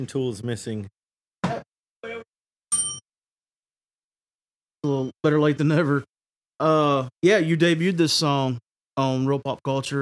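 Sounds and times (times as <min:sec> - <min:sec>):
speech: 0:00.0 - 0:01.0, 0:04.8 - 0:10.0
small bell struck with short bright dings: 0:02.7 - 0:03.1.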